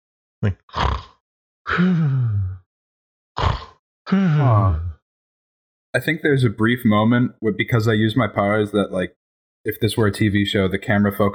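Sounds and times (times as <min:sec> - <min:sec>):
speech: 0:00.4 - 0:01.0, 0:01.7 - 0:02.4, 0:04.1 - 0:04.9, 0:06.0 - 0:11.3
person imitating soft snoring as Foley: 0:00.4 - 0:02.6, 0:03.4 - 0:05.0.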